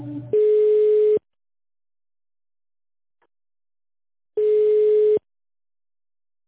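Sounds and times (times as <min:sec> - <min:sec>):
long steady telephone line tones while a call is being transferred: 0:00.4 - 0:01.2, 0:04.4 - 0:05.2.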